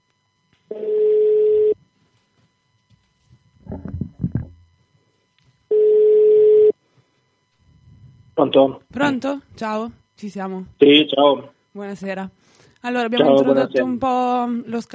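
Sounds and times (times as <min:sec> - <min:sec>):
speech: 0:00.7 - 0:01.0, 0:08.4 - 0:14.9
ringback tone of an outgoing telephone call: 0:00.7 - 0:01.8, 0:05.7 - 0:06.8.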